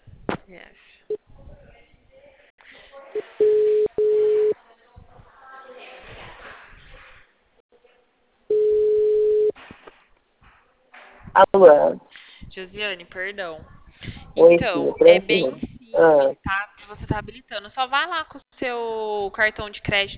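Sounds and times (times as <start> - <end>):
faint noise: 0.1 - 20.1
speech: 0.5 - 1.2, 11.6 - 12.0, 12.6 - 13.8, 14.4 - 20.1
steady low electronic telephone beeps while a call is placed: 3.2 - 4.6, 8.5 - 9.6.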